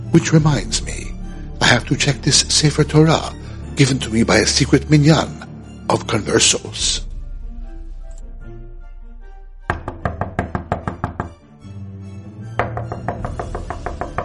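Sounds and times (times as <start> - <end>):
soft music: 0.0 - 14.2
speech: 0.1 - 1.0, 1.6 - 7.1
sharp knocks on a door: 9.7 - 11.4, 12.6 - 14.2.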